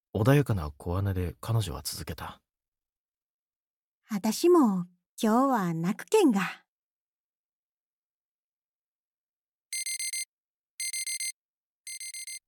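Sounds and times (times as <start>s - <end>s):
speech: 0.2s - 2.4s, 4.1s - 6.6s
smartphone alarm with rapid four-note electronic beeps: 9.7s - 12.4s.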